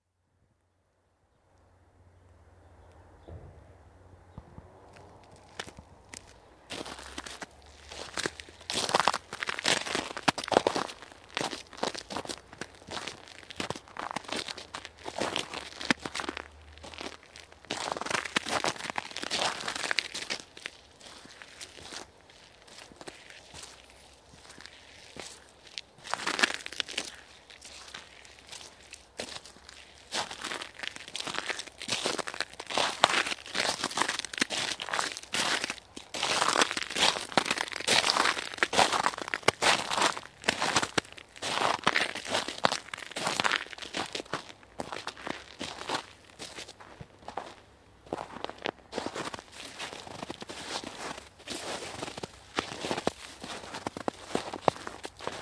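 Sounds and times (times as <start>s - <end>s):
footsteps in the snow in woods near Hebborn in Germany: 4.9s - 55.4s.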